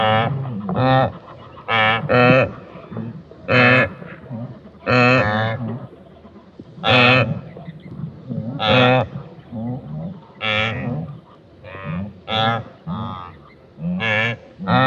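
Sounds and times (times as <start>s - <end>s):
wildebeest grunting with loud nasal honking grunts: 0.0s - 14.8s.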